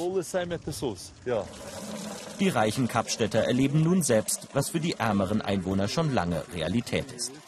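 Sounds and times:
speech: 0:00.1 - 0:07.4
water pouring at a public spring in Cape Town South Africa: 0:01.3 - 0:07.4.

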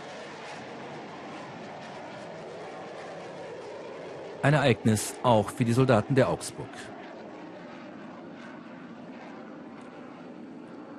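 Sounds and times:
fighter jets roaring: 0:04.4 - 0:06.9
speech: 0:04.4 - 0:07.0.

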